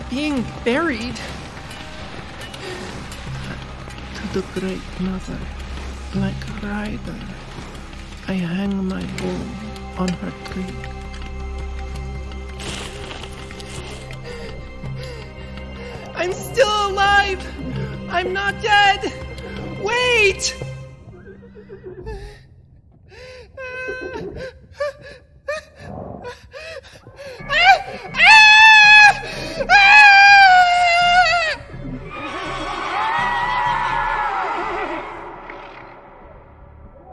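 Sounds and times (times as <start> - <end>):
speech: 0.1 - 1.4, 4.3 - 7.7, 8.3 - 11.0, 16.2 - 19.2, 19.8 - 20.6
people screaming: 27.5 - 36.3.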